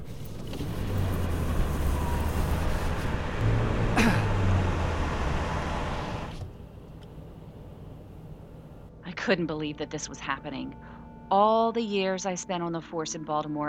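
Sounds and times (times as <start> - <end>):
car road noise on a highway: 0.0 - 9.0
low car engine drone: 0.0 - 13.0
speech: 9.3 - 13.6.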